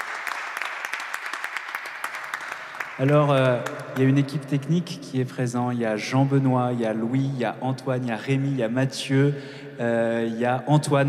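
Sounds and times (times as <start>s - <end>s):
audience applause at a worship concert: 0.0s - 3.8s
speech: 3.0s - 11.0s.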